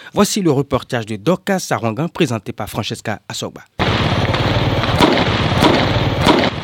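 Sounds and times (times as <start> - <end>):
speech: 0.1 - 6.0
fireworks banging outdoors at New Year celebration: 3.8 - 6.6.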